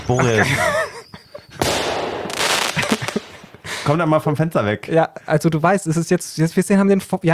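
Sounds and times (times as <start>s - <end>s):
firecracker bang and crackle: 0.0s - 0.8s, 1.6s - 4.0s
laughter: 0.0s - 5.4s
speech: 0.1s - 0.8s, 3.9s - 7.3s.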